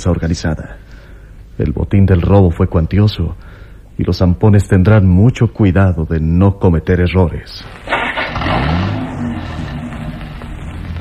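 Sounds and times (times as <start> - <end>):
speech: 0.0 - 0.8, 1.6 - 8.8
car engine starting and pulling away: 7.6 - 10.9.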